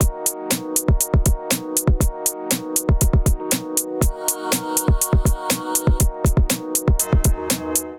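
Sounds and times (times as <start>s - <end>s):
drum kit: 0.0s - 7.9s.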